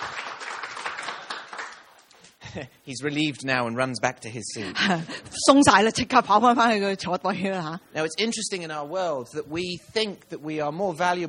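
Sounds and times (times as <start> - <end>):
audience applauding at a church gathering: 0.0 - 2.1
speech: 2.5 - 11.2.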